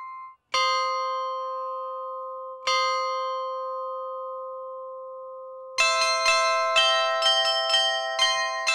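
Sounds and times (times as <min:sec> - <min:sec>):
clock tower bells chiming the hour: 0:00.0 - 0:04.8, 0:05.8 - 0:08.7.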